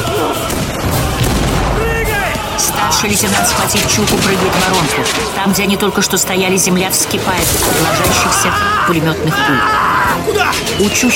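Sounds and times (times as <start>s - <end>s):
mortar shell explosion hitting the turret of a Soviet tank: 0.5s - 4.6s
speech: 3.0s - 11.1s
laughter: 7.5s - 11.1s.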